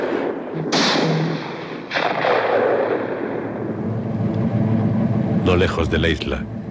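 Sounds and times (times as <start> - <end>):
gunshots echoing across a harbor dock: 0.0 - 3.6
steady noise: 0.0 - 6.6
speech: 5.5 - 6.6.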